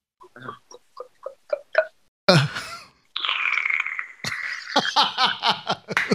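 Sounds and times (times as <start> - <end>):
slurping a cocktail through a straw in a small restaurant: 3.2 - 4.8
laughter: 4.2 - 6.1.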